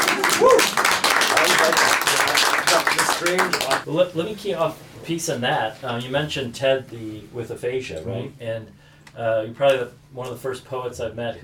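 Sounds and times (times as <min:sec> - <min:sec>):
hand clapping after a poem: 0:00.0 - 0:03.8
speech: 0:03.2 - 0:11.4.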